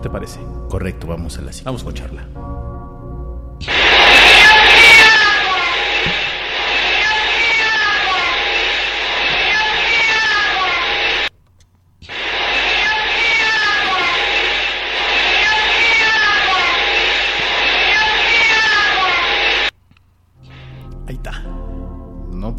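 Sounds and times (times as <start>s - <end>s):
speech: 0.0s - 2.7s
heavy noise: 3.6s - 11.3s, 12.0s - 19.8s
loud distorted shouted voice in an EVP recording: 3.6s - 11.3s, 12.1s - 19.7s.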